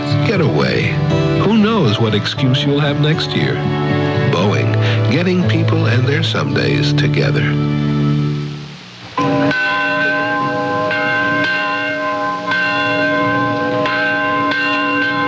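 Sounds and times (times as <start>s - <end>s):
big church bells pealing: 0.0s - 7.6s, 9.2s - 15.2s
speech: 0.3s - 4.5s, 5.1s - 7.9s.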